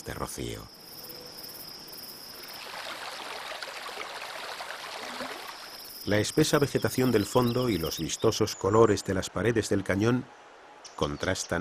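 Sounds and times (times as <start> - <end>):
insects chirping faintly: 0.0 - 8.4
speech: 0.1 - 0.8, 6.0 - 11.5
stream water flowing in a canyon in a park: 0.8 - 8.1.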